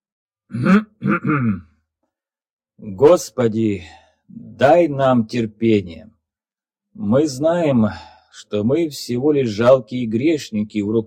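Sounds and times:
speech: 0:00.5 - 0:01.7, 0:02.8 - 0:06.1, 0:07.0 - 0:11.0
man clearing his throat: 0:00.5 - 0:01.8.

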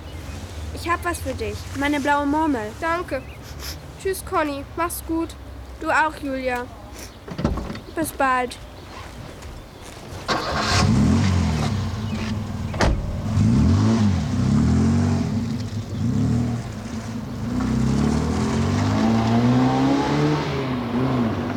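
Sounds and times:
speech: 0:00.8 - 0:07.4, 0:08.0 - 0:08.7
car engine starting and revving as the car pulls away: 0:10.3 - 0:21.5.

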